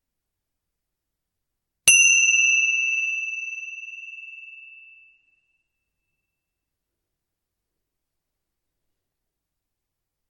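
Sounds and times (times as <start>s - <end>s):
small meditation bell struck to end meditation practice: 1.9s - 5.8s.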